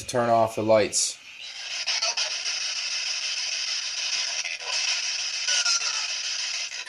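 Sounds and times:
speech: 0.1 - 1.2
radio frequency interference static from spirit box: 1.4 - 6.8.

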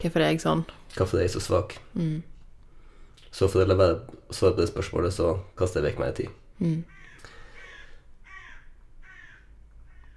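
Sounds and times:
speech: 0.0 - 2.3, 3.3 - 7.0
crows cawing: 6.9 - 10.1.

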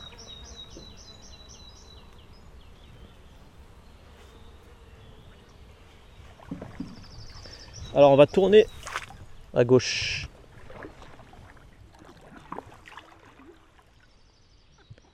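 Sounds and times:
bird singing high repeated notes: 0.0 - 9.7, 14.0 - 15.1
boat noise: 6.2 - 14.0
speech: 8.0 - 8.8, 9.6 - 10.3.

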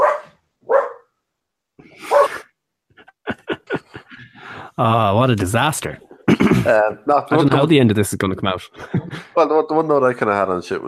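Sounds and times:
dogs barking: 0.0 - 1.1, 2.0 - 2.5
laughter: 2.9 - 4.6, 8.7 - 9.4
speech: 4.8 - 10.8.

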